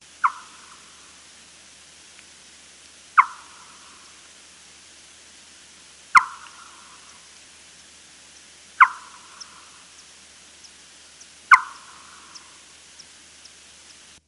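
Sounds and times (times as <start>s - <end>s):
spotted bat calls: 0.0s - 1.3s, 3.1s - 4.4s, 6.0s - 14.1s.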